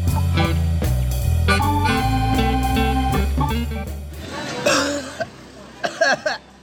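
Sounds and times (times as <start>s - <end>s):
music: 0.0s - 4.4s
person coughing harshly: 4.6s - 6.4s.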